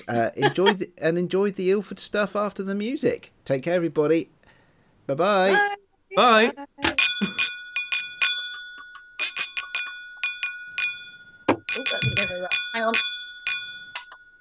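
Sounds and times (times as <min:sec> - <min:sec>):
speech: 0:00.0 - 0:04.4, 0:05.1 - 0:07.5, 0:12.4 - 0:13.1
fire bell ringing: 0:07.0 - 0:14.3.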